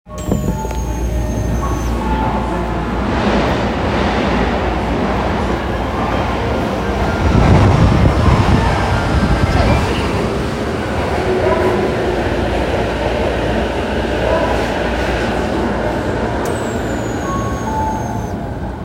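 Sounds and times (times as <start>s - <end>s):
train sounds at Yushima: 0.1s - 18.8s.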